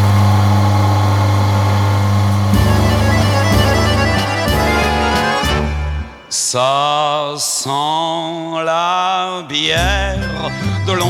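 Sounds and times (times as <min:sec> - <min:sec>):
brewing machine motor humming: 0:00.0 - 0:06.1
speech: 0:06.5 - 0:11.0.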